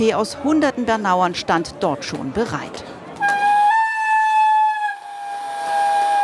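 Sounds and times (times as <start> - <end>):
speech: 0.0 - 3.0
historic 1928 S-Bahn train whistle arriving at the Bernau platform: 3.2 - 6.2.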